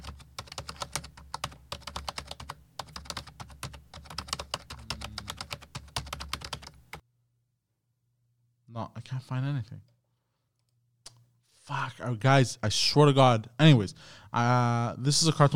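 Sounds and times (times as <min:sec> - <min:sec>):
rapid typing on a computer keyboard: 0:00.0 - 0:07.0
speech: 0:08.8 - 0:09.9, 0:11.7 - 0:15.5.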